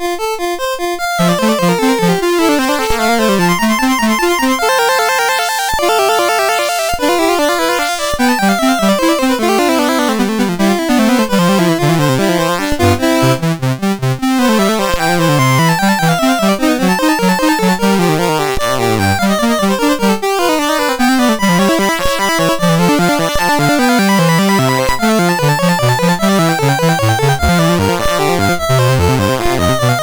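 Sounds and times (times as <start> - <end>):
chiptune piece on a MOS6581R4 sound chip: 0.0 - 30.0.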